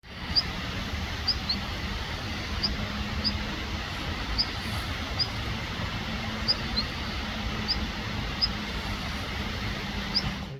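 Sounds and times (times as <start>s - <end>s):
benimasiko bird song: 0.0s - 10.5s.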